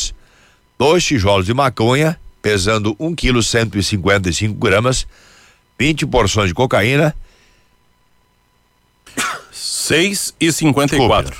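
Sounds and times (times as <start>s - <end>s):
speech: 0.8s - 7.2s, 9.9s - 11.3s
sneeze: 9.1s - 9.6s.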